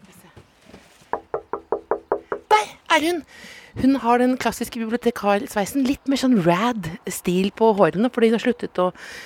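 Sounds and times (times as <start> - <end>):
crisp raps on a window pane: 1.1 - 2.6
speech: 2.9 - 9.2.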